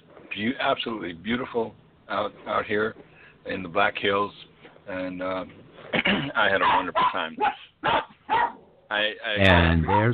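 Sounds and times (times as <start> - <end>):
speech: 0.4 - 8.1, 8.9 - 10.1
dog barking: 6.6 - 8.7, 9.8 - 10.1.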